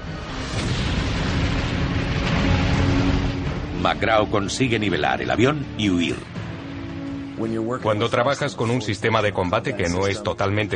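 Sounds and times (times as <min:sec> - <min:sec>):
bomb explosion ripping a transport ship's hull: 0:00.0 - 0:05.8
speech: 0:03.9 - 0:06.4, 0:07.4 - 0:10.7.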